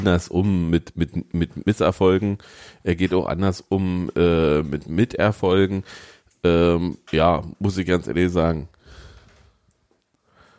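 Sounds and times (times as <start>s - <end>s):
speech: 0.0s - 9.0s
heavy breathing: 2.4s - 2.9s, 5.8s - 6.4s, 8.8s - 9.6s, 10.2s - 10.5s.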